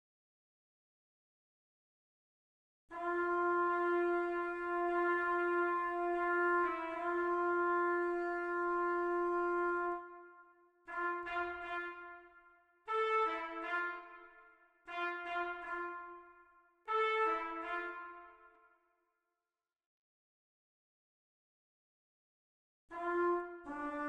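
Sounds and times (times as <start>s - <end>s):
trumpet: 2.9s - 18.8s, 22.9s - 24.0s.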